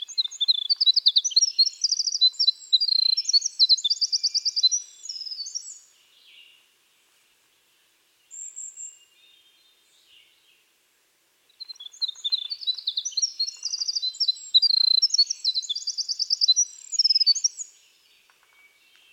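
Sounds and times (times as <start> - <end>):
winter wren Troglodytes hiemalis singing trills: 0.0 - 6.5, 11.5 - 18.3.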